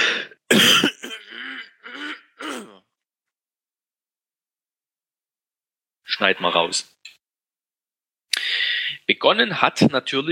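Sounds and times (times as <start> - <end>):
loud throat clearing: 0.5 - 2.9
speech: 6.2 - 7.0, 9.1 - 10.3.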